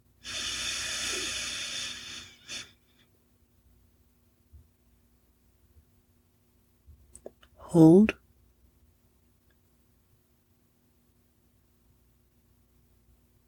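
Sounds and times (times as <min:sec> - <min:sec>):
person breathing in and out: 0:00.2 - 0:02.8
speech: 0:07.7 - 0:08.2.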